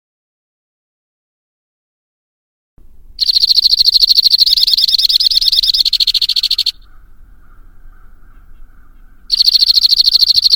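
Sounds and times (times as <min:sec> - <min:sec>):
White-winged crossbill song: 0:03.2 - 0:06.8, 0:09.3 - 0:10.5.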